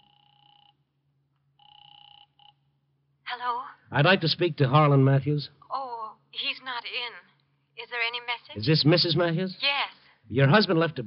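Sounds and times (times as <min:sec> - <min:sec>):
telephone ringing through the earpiece: 0:00.0 - 0:00.9, 0:01.6 - 0:03.4
speech: 0:03.4 - 0:05.6, 0:06.4 - 0:11.0.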